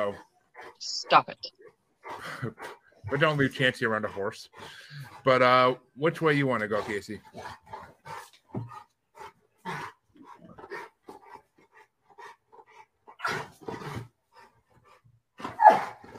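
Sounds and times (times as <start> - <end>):
speech: 0.0 - 8.8
dog panting: 0.0 - 16.1
dog barking: 15.6 - 16.0.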